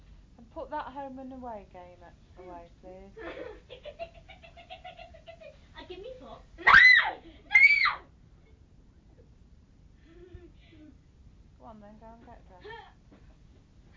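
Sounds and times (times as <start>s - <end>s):
speech: 0.6s - 4.2s, 11.6s - 13.2s
child screaming shrilly: 6.6s - 8.1s.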